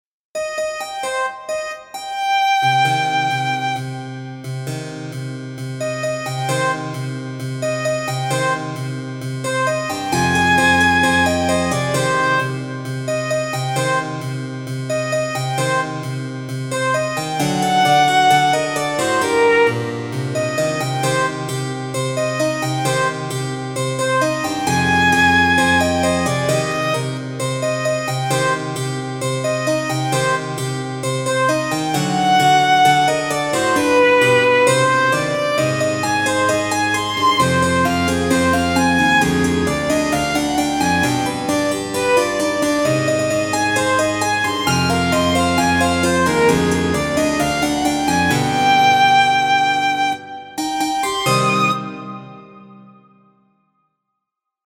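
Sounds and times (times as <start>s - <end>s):
harpsichord: 0.4s - 52.6s
viola: 9.5s - 14.0s, 16.8s - 21.3s, 24.0s - 27.2s, 31.2s - 52.4s.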